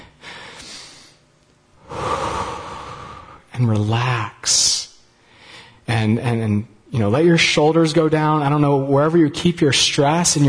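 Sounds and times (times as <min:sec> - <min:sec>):
deep breath during a guided relaxation: 0:00.0 - 0:01.2, 0:01.8 - 0:03.5, 0:05.2 - 0:05.8
speech: 0:03.6 - 0:04.7, 0:06.0 - 0:10.4.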